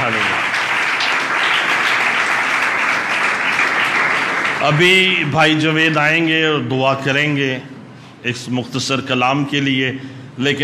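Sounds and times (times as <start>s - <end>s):
audience applause at a worship gathering: 0.0s - 5.3s
speech: 4.6s - 10.6s.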